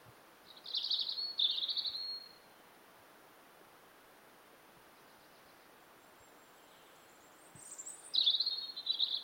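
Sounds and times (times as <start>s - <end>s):
European robin singing: 0.4s - 2.6s, 5.0s - 9.2s.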